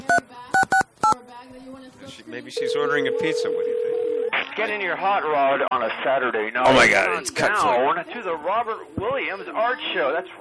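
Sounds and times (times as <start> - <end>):
touch-tone telephone dialing beeps: 0.0 - 1.2, 2.6 - 4.3
murmur: 0.0 - 10.3
speech: 2.3 - 3.8, 4.6 - 10.3.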